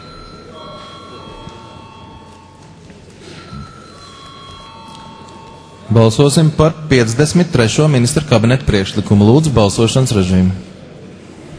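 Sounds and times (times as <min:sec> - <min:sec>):
electric bell ringing to close a parliamentary debate: 0:00.0 - 0:07.2
low murmur of the parliamentary chamber: 0:00.0 - 0:11.5
speech: 0:05.9 - 0:10.7.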